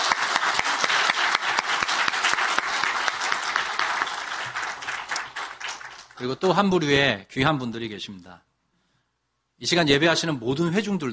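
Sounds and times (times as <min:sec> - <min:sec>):
room full of people applauding: 0:00.0 - 0:06.6
speech: 0:06.2 - 0:08.5, 0:09.6 - 0:11.1.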